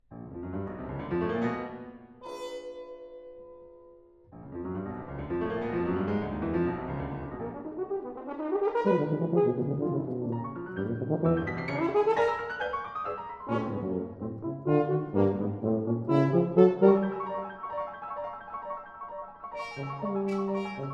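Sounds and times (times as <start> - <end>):
piano: 0.0 - 20.9
tuba: 4.4 - 18.4, 19.5 - 20.9
horn: 5.4 - 18.0, 19.5 - 20.9.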